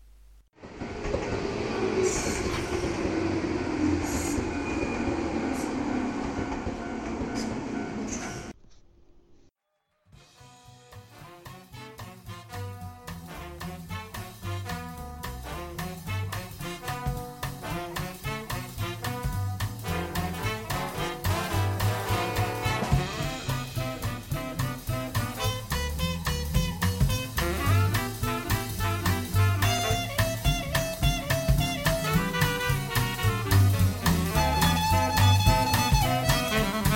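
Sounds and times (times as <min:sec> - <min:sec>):
subway train running: 0:00.6 - 0:08.6, 0:13.3 - 0:36.9.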